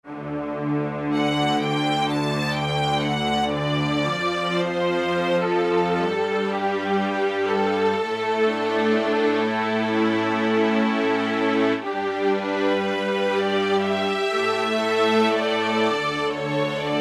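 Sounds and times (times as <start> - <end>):
symphonic string violins: 0.1 - 16.9.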